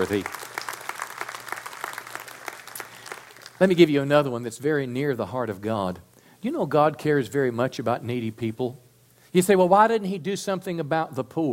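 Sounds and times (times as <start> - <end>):
speech: 0.0 - 0.4, 3.6 - 11.5
crowd clapping: 0.0 - 3.9.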